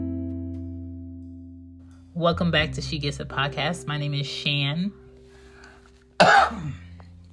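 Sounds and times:
speech: 2.2 - 5.0
single sharp cough close to the microphone: 6.2 - 7.0.

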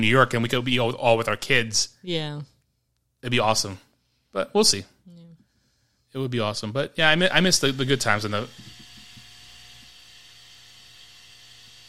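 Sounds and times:
speech: 0.0 - 2.5, 3.2 - 5.2, 6.1 - 8.7
refrigerator ice maker running with low mechanical hum and airy whir: 7.2 - 11.8.

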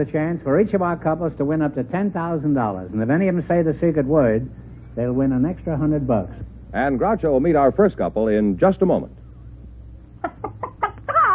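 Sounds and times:
speech: 0.0 - 9.2
low hum: 0.0 - 11.3
chicken clucking: 10.2 - 11.3.

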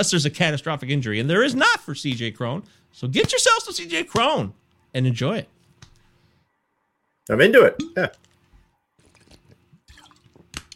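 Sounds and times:
speech: 0.0 - 5.6, 7.2 - 8.3
person sipping and slurping water: 9.0 - 10.7
short gulp: 9.0 - 10.7
small liquid drips: 9.0 - 10.7.

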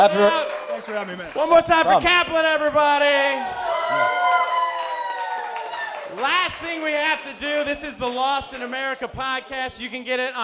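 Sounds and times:
speech: 0.0 - 4.3, 6.1 - 10.4
audience cheering with whoops and shouting: 0.0 - 7.7
audience clapping at the end of a show: 0.0 - 9.9.

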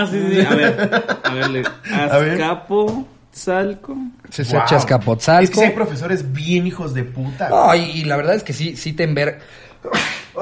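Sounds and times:
speech: 0.0 - 10.4
laughter: 0.1 - 2.3
person sneezing sharply: 9.8 - 10.4.

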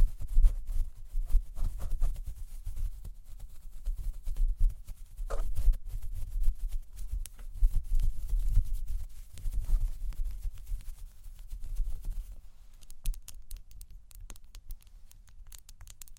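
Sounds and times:
fingers brushing against a microphone: 0.0 - 13.6
small bright ticks: 9.3 - 16.1.

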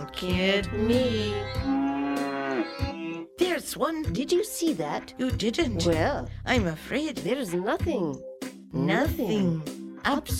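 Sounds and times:
speech: 0.1 - 1.9, 3.6 - 10.3
cow mooing: 1.1 - 3.3.

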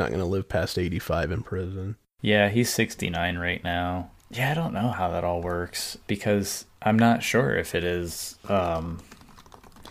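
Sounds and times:
speech: 0.0 - 9.2
typing on a computer keyboard: 9.0 - 9.9.

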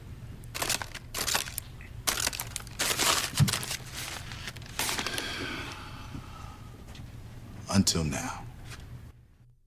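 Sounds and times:
paper bag being crinkled: 0.5 - 5.4
speech: 7.8 - 8.4.

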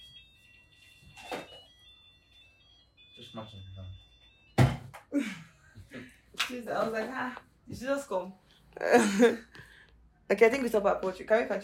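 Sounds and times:
thin high-pitched alarm tone: 0.0 - 5.6
speech: 3.2 - 4.1, 5.1 - 9.6, 10.3 - 11.6.

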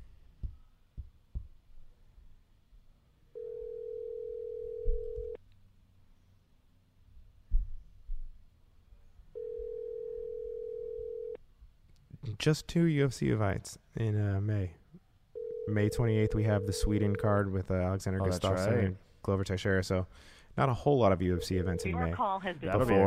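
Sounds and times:
telephone tone while a call is dialed: 3.3 - 5.4, 9.4 - 11.4, 15.4 - 17.3, 21.4 - 22.2
speech: 12.4 - 14.8, 15.7 - 23.0.

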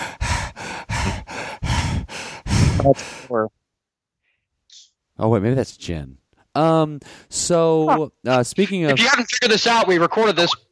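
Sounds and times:
person imitating a beagle panting at night: 0.0 - 3.1
speech: 2.8 - 3.6, 5.2 - 10.7.

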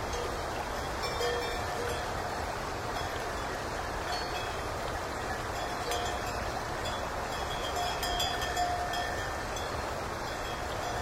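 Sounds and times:
low rumble of wind: 0.0 - 11.0
cowbells of driven cows clinking along a mountain road: 1.0 - 2.1, 4.1 - 4.6, 5.6 - 9.7.

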